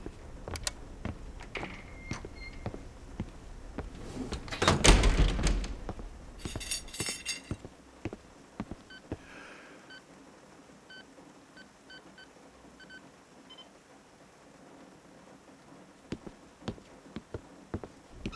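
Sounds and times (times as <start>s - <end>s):
doors being shut and latched: 0.0s - 7.7s
faint rattling: 0.0s - 8.8s.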